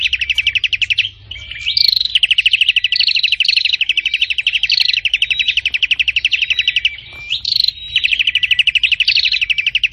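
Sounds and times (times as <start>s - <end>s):
prinia song: 0.0s - 9.9s.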